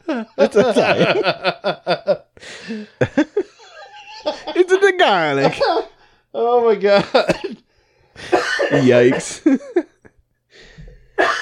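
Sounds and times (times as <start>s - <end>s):
laughter: 0.0s - 6.0s
speech: 0.2s - 3.2s, 5.0s - 5.8s, 6.5s - 7.4s, 8.8s - 9.7s
harsh hacking cough: 7.0s - 9.6s, 11.2s - 11.4s.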